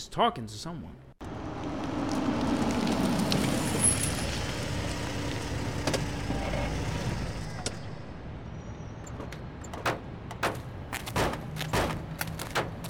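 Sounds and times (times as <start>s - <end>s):
speech: 0.0s - 1.1s
vehicle driving over potholed road: 1.2s - 12.8s.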